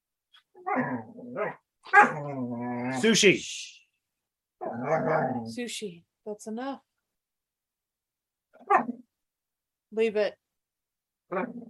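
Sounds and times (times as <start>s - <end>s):
speech: 0.6s - 3.8s, 4.7s - 6.9s, 9.9s - 10.4s, 11.3s - 11.6s
dog barking: 1.4s - 2.2s, 8.6s - 9.0s.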